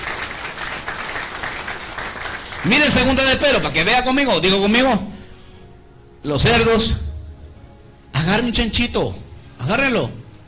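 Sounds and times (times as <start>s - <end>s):
church congregation applauding: 0.0s - 3.8s
speech: 2.6s - 5.1s, 6.2s - 7.0s, 8.3s - 10.2s.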